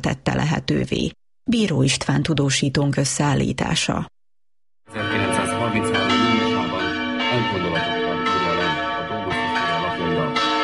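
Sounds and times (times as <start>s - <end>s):
speech: 0.0s - 4.1s
church bells pealing: 4.9s - 10.6s.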